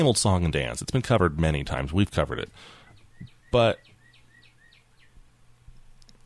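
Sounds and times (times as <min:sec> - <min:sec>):
speech: 0:00.0 - 0:02.8, 0:03.5 - 0:03.9
small bird chirping high tweets: 0:02.7 - 0:05.3.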